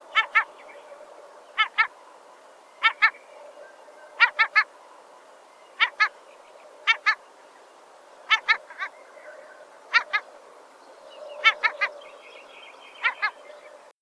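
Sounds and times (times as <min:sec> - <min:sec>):
Caspian gull: 0:00.2 - 0:00.5, 0:01.6 - 0:01.9, 0:04.2 - 0:04.7, 0:05.8 - 0:06.1, 0:08.3 - 0:08.9, 0:09.9 - 0:10.2, 0:11.4 - 0:12.0, 0:13.0 - 0:13.4.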